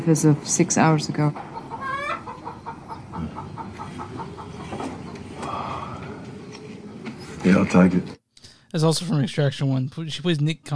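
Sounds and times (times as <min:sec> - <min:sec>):
speech: 0:00.0 - 0:01.6, 0:07.5 - 0:10.7
chicken clucking: 0:01.2 - 0:05.3
chicken squawking: 0:01.5 - 0:04.7.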